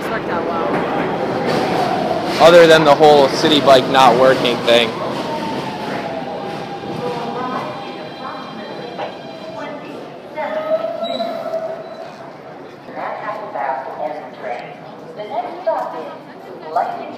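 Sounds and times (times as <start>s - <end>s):
indistinct voices murmuring: 0.0s - 13.7s
subway train rumbling through a tunnel: 0.0s - 17.1s
speech: 0.2s - 0.8s, 2.4s - 5.0s.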